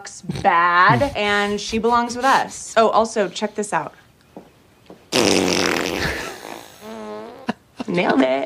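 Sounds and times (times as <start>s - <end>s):
speech: 0.0s - 4.0s, 7.9s - 8.4s
fart: 5.1s - 7.6s.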